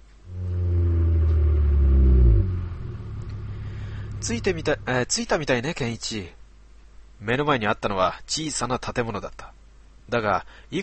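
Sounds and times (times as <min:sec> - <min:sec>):
bus engine rumbling as the bus slows to a stop and idles: 0:00.2 - 0:05.9
speech: 0:04.2 - 0:06.4, 0:07.2 - 0:09.5, 0:10.1 - 0:10.8.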